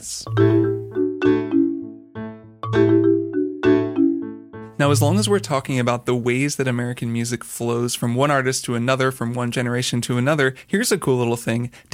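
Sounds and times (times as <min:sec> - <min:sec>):
speech: 0:00.0 - 0:00.6, 0:04.8 - 0:11.9
keyboard sustaining low chords: 0:00.3 - 0:05.6.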